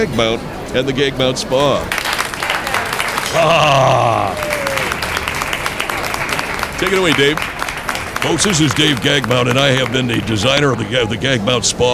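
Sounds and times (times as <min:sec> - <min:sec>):
speech: 0:00.0 - 0:02.0, 0:03.3 - 0:04.5, 0:06.8 - 0:07.5, 0:08.2 - 0:11.9
live crowd applauding: 0:01.8 - 0:11.9
laughter: 0:02.5 - 0:11.9
person whooping: 0:03.3 - 0:05.3.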